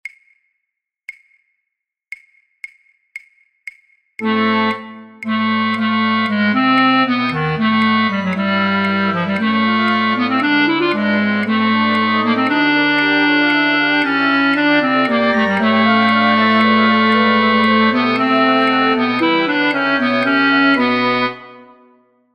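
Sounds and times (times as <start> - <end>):
bass flute playing in a flute orchestra: 4.2 - 21.8.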